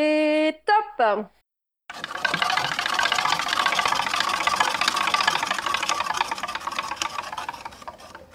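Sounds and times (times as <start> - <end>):
speech: 1.0 - 1.4
prize wheel spinning during a game: 1.9 - 8.2.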